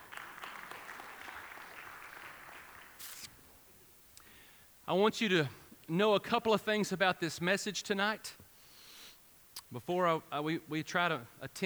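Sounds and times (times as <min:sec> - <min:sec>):
audience hand clapping: 0:00.0 - 0:03.6
speech: 0:04.9 - 0:08.4, 0:09.7 - 0:11.6.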